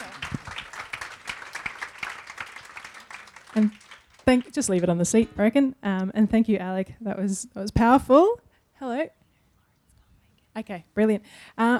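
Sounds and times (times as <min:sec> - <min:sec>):
audience applause: 0:00.0 - 0:04.7
speech: 0:03.6 - 0:09.2, 0:10.6 - 0:11.7.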